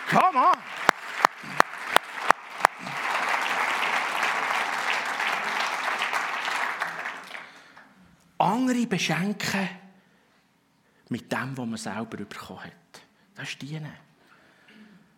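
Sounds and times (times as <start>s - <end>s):
crowd applause: 0.0s - 7.9s
speech: 8.8s - 9.8s, 11.1s - 12.8s, 13.4s - 14.1s.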